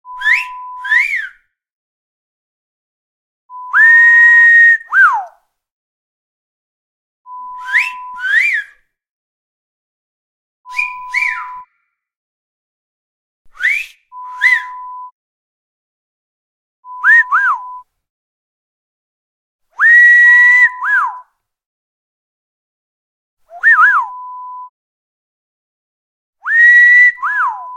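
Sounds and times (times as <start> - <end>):
wolf whistles: 0.1 - 1.4, 3.5 - 5.4, 7.3 - 8.8, 10.7 - 11.9, 13.5 - 15.1, 16.8 - 17.8, 19.8 - 21.3, 23.5 - 24.7, 26.4 - 27.7.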